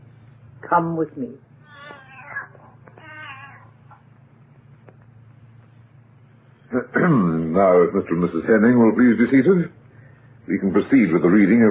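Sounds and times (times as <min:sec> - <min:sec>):
low steady hum: 0:00.0 - 0:11.6
speech: 0:00.7 - 0:01.5, 0:06.8 - 0:09.8, 0:10.5 - 0:11.6
cat meowing plaintively: 0:01.6 - 0:04.0.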